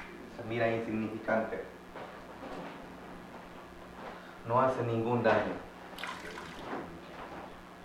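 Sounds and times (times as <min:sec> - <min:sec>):
speech: 0:00.4 - 0:01.8, 0:04.4 - 0:05.7
faint water drips: 0:06.0 - 0:06.7
water pouring in a splashing trickle: 0:06.0 - 0:06.8.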